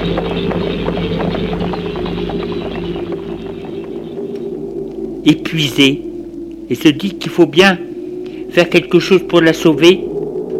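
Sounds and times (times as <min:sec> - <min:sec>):
horse hooves clip-clopping: 0:00.0 - 0:04.5
constant low hum: 0:00.0 - 0:10.5
speech: 0:05.2 - 0:06.1, 0:06.7 - 0:07.9, 0:08.5 - 0:10.1.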